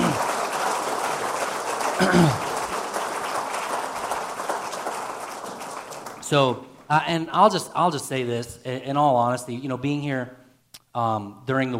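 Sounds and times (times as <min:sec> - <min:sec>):
church audience applauding: 0:00.0 - 0:06.9
speech: 0:02.0 - 0:02.4, 0:06.3 - 0:11.7.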